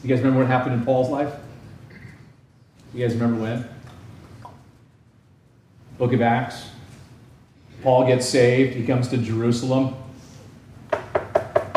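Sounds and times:
speech: 0.0 - 1.5, 2.9 - 3.8, 6.0 - 6.8, 7.8 - 10.0
knocking on a door: 10.9 - 11.7.

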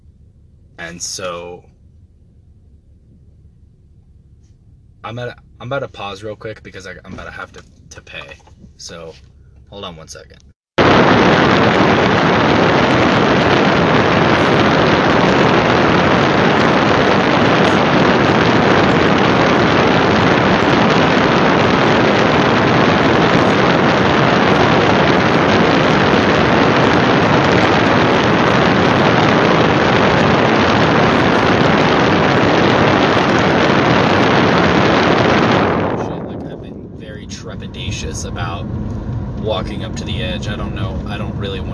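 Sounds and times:
speech: 0.8 - 1.7, 5.0 - 10.5
wind gusts buffeting the microphone at the North Rim: 10.8 - 41.7.

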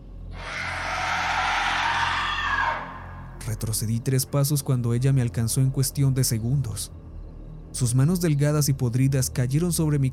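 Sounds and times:
loud sustained female scream: 0.4 - 3.2
speech: 3.6 - 7.0, 7.8 - 10.1.

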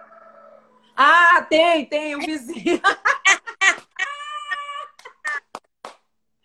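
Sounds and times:
chicken clucking: 0.0 - 1.0
speech: 1.0 - 3.1
laughter: 2.2 - 5.6.

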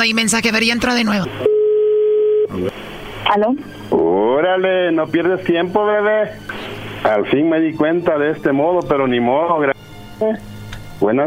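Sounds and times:
speech: 0.0 - 1.5, 2.5 - 11.2
telephone ringing tone over a phone line: 1.4 - 2.5
voice: 2.5 - 2.8.

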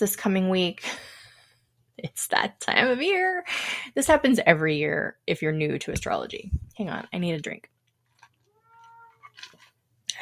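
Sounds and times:
speech: 0.0 - 1.1, 2.0 - 7.7
cat drawn-out wavering meow: 8.5 - 9.4.

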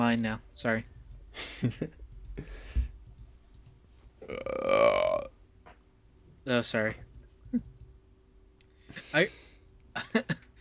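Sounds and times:
speech: 0.1 - 2.6, 6.4 - 7.7, 8.9 - 9.4, 10.0 - 10.6
loud drawn-out burp: 4.2 - 5.3.

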